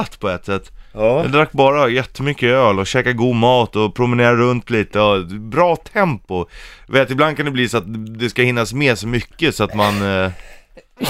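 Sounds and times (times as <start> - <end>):
speech: 0.0 - 11.0
person sneezing: 9.8 - 11.0.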